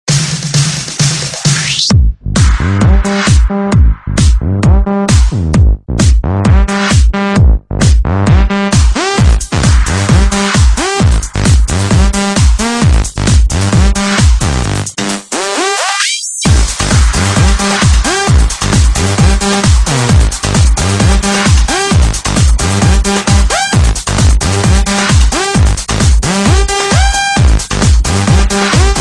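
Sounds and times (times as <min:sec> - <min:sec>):
electro funk music: 0:00.1 - 0:29.0.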